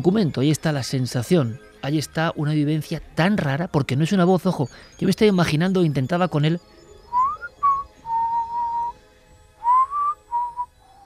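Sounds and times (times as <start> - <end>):
speech: 0.0 - 6.8
human whistling short and drawn-out tonal notes: 7.1 - 8.9, 9.6 - 11.0.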